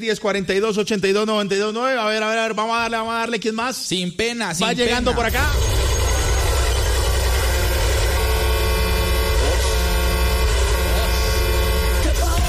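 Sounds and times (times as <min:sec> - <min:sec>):
speech: 0:00.0 - 0:06.0
big vehicle deep rumbling engine: 0:04.8 - 0:12.4
big vehicle horn blaring: 0:05.4 - 0:12.4.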